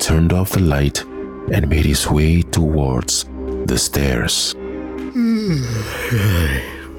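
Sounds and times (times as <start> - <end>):
speech: 0.1 - 4.6, 5.5 - 6.8
man yawning loudly: 5.1 - 6.9.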